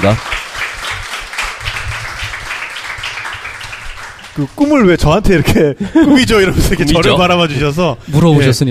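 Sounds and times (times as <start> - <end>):
speech: 0.0 - 0.4, 4.4 - 8.6
crowd applauding: 0.0 - 5.5.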